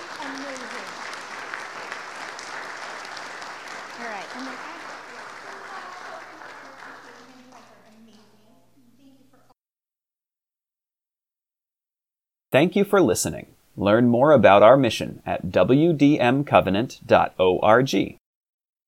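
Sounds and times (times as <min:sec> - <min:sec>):
audience applause: 0:00.0 - 0:07.9
speech: 0:12.6 - 0:18.2.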